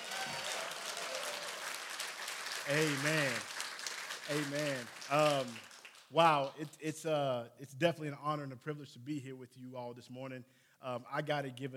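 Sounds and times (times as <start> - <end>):
room full of people clapping: 0.0 - 6.8
speech: 2.6 - 3.5, 4.3 - 11.7.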